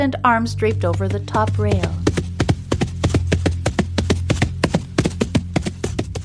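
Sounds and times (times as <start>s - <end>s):
speech: 0.0s - 2.2s
horse hooves trotting up a path: 0.6s - 6.2s.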